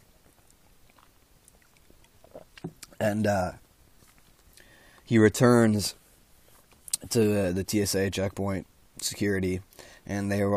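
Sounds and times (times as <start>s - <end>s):
person sipping a drink: 0.4s - 3.0s
gulp: 0.9s - 3.0s
speech: 3.0s - 3.6s, 5.1s - 6.0s, 7.1s - 10.5s.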